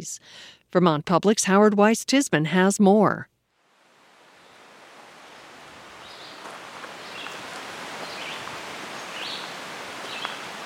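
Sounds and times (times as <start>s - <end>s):
speech: 0.0s - 3.3s
rush of rustling leaves or running water in a Vermont forest park: 3.6s - 10.6s.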